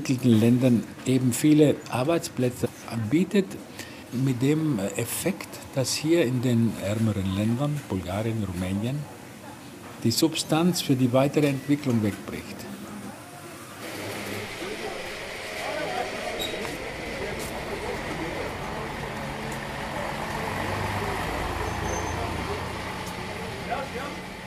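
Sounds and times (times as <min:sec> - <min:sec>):
speech: 0:00.0 - 0:09.2, 0:10.0 - 0:12.7
crowd of people chattering at shift end: 0:11.4 - 0:24.4
bus engines idling at a factory gate: 0:13.8 - 0:24.4.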